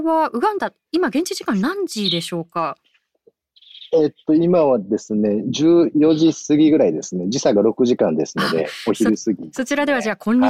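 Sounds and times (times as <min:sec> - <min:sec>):
speech: 0:00.0 - 0:02.9, 0:03.9 - 0:10.4
birds chirping outdoors: 0:01.5 - 0:06.5
shrill bird twittering: 0:01.9 - 0:02.4, 0:03.6 - 0:04.3.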